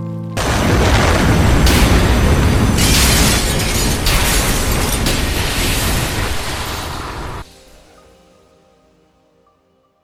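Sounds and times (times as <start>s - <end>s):
bomb explosion in a train tunnel: 0.4s - 7.5s
crackling debris: 0.4s - 7.5s
low hum: 0.4s - 7.5s.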